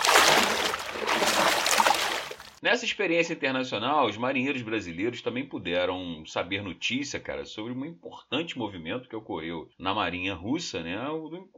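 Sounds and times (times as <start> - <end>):
water pouring: 0.0 - 2.6
speech: 2.6 - 11.5.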